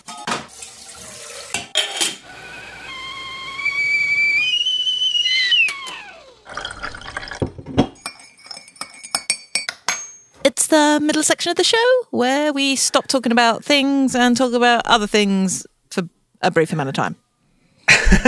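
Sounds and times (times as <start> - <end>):
kettle whistling with a shrill tone: 2.2 - 7.1
light ceramic cups and spoons clinking: 7.9 - 10.3
speech: 10.7 - 17.2, 17.9 - 18.2.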